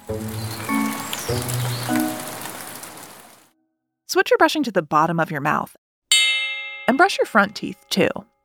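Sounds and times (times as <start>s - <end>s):
steady rain: 0.0s - 3.5s
speech: 0.1s - 0.4s, 4.1s - 5.8s, 6.9s - 8.3s.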